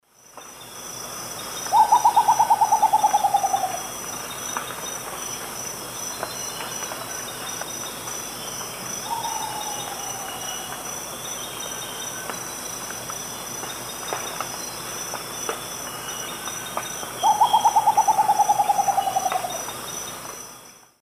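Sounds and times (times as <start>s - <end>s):
two Nyctibius bracteatus birds singing in South American eastern lowlands: 1.4s - 4.4s, 8.4s - 12.2s, 17.1s - 20.2s.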